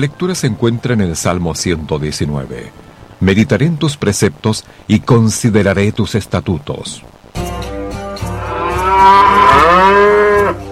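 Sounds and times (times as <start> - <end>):
speech: 0.0 - 7.2
cow letting out a long loud moo: 8.2 - 10.6.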